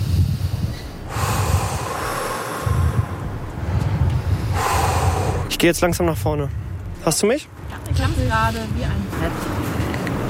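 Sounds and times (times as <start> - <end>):
deep heavy breathing at the edge of a sheer drop: 0.0 - 5.6
wind noise on microphone: 0.0 - 10.2
speech: 5.6 - 9.7.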